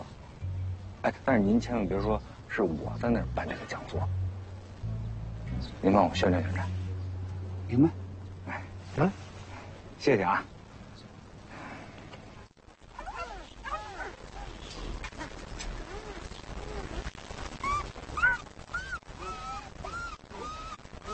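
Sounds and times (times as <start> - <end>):
steady noisy background: 0.0 - 12.4
speech: 1.0 - 4.2, 5.7 - 6.8, 7.7 - 8.0, 9.0 - 9.2, 10.0 - 10.5
small puppy yipping and barking: 17.6 - 21.1.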